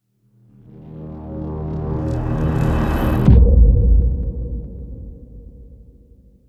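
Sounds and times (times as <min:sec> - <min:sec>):
riser: 0:00.9 - 0:03.6
boom: 0:02.9 - 0:06.4.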